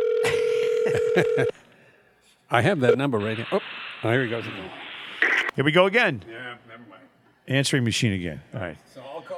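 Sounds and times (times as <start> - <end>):
steady telephone tone: 0.0 - 1.5
faint noise: 0.0 - 9.3
speech: 0.9 - 1.6, 2.5 - 4.8, 5.6 - 9.3.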